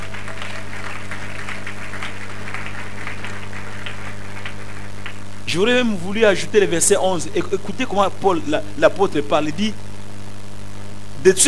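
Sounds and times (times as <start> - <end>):
church congregation applauding after a Bible reading: 0.0 - 9.8
faint low hum: 0.0 - 11.4
speech: 5.5 - 9.9, 11.2 - 11.4.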